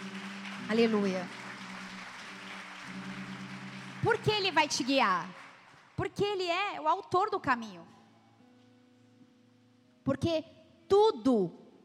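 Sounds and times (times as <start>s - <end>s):
audience applause: 0.0s - 6.0s
speech: 0.7s - 1.4s, 4.0s - 5.4s, 6.0s - 7.9s, 10.1s - 11.6s.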